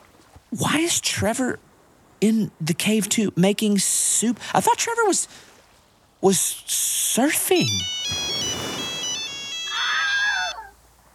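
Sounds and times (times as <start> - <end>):
speech: 0.5 - 5.5, 6.2 - 8.4
phone electronic ringtone with sustained synthetic notes: 7.6 - 10.6.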